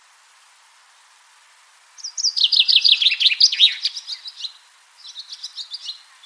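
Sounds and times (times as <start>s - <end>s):
common chaffinch Fringilla coelebs singing cascading sharp notes: 2.0s - 6.2s.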